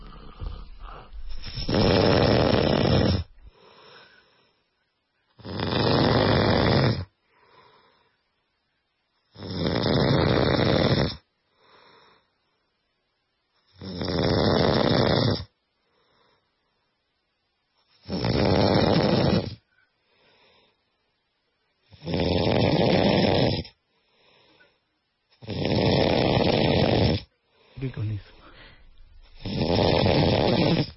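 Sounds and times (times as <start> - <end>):
man snoring loudly while asleep: 0.0 - 3.4, 5.4 - 7.1, 9.3 - 11.2, 13.8 - 15.5, 18.0 - 19.6, 21.9 - 23.8, 25.4 - 30.9
quiet breath in: 0.0 - 5.4, 7.1 - 9.2, 11.4 - 12.8, 15.7 - 17.0, 19.6 - 21.1, 23.7 - 25.1, 27.2 - 30.9.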